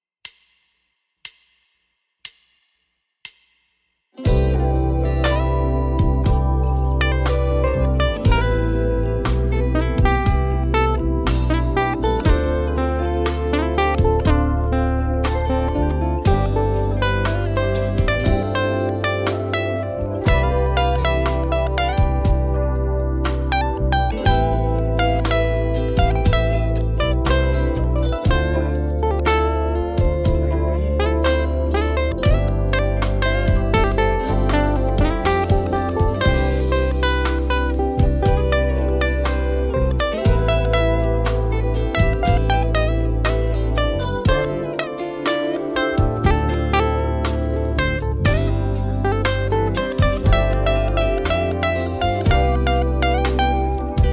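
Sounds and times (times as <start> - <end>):
ukulele C major chord: 4.2 - 54.1.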